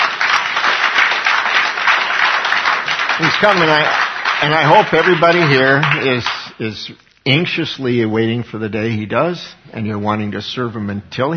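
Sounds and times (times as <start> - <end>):
crowd applauding: 0.0 - 6.6
speech: 3.2 - 11.3.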